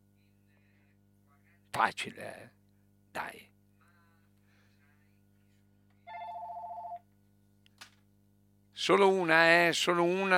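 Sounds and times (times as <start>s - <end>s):
low steady hum: 0.0s - 10.3s
speech: 1.8s - 2.6s, 8.8s - 10.3s
warbling telephone ring: 6.1s - 7.0s.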